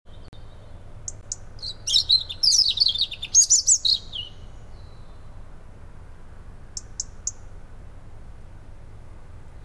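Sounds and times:
low steady background rumble: 0.1 - 9.6
European robin warbling: 1.0 - 4.4.

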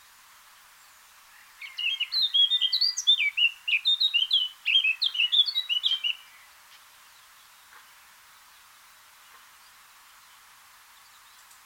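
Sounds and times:
Eurasian blackcap Sylvia atricapilla warbling song: 1.5 - 6.4.

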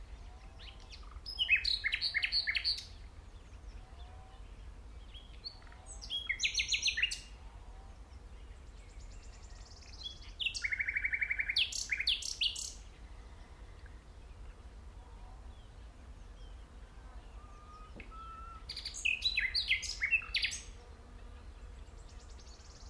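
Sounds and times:
common nightingale Luscinia megarhynchos singing: 0.4 - 3.0, 5.0 - 7.3, 8.9 - 12.9, 17.3 - 20.7.

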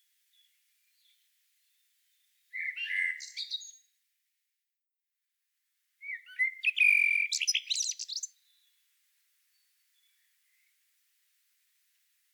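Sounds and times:
common blackbird singing: 2.5 - 3.8, 6.0 - 8.7.

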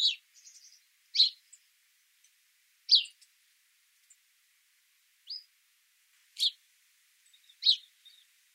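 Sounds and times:
house sparrow Passer domesticus chirping: 0.0 - 1.7, 2.9 - 3.3, 5.2 - 5.5, 6.4 - 6.6, 7.2 - 8.3.

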